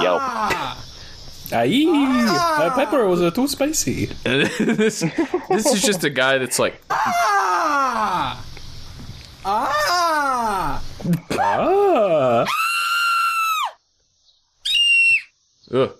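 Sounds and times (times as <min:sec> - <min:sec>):
person screaming: 0:00.0 - 0:00.8, 0:01.9 - 0:03.1, 0:06.9 - 0:08.5, 0:09.4 - 0:13.8
speech: 0:01.5 - 0:07.3, 0:15.7 - 0:15.9
laughter: 0:04.2 - 0:06.1.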